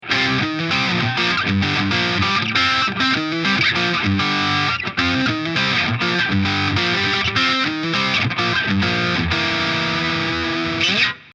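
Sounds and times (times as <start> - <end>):
Solar Guitars GC1.6 electric guitar with bridge pickup coils in parallel: 0.0 - 11.3.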